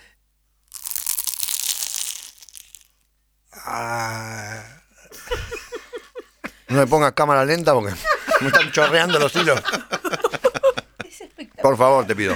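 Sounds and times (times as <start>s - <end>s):
teeth biting through flaky puff pastry: 0.7s - 3.0s
short vocal sounds: 3.5s - 5.5s
speech: 3.6s - 4.4s, 6.7s - 10.5s, 11.6s - 12.3s
drawn-out voiced murmur: 3.6s - 5.6s, 7.9s - 12.3s
laughter: 5.0s - 12.3s.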